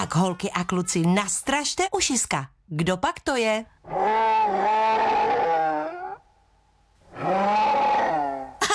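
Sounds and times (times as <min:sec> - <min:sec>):
speech: 0:00.1 - 0:05.3
bear growling: 0:03.9 - 0:06.3, 0:07.1 - 0:08.6.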